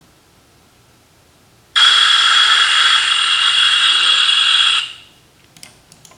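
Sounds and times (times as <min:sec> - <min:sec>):
gas leak hissing: 0:01.8 - 0:05.2.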